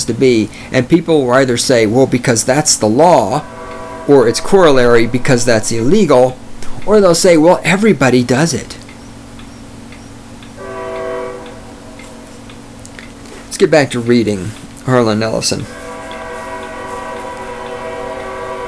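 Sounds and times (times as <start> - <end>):
speech: 0.1 - 8.8, 13.6 - 15.8
passing train horn blaring: 2.6 - 7.8, 10.6 - 12.8, 15.2 - 18.6.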